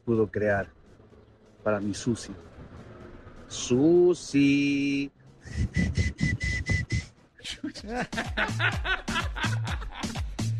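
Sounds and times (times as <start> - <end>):
speech: 0.1 - 0.8, 1.6 - 2.5, 3.5 - 6.6, 7.7 - 9.8
person whistling: 5.4 - 7.1
person chuckling: 7.4 - 10.2.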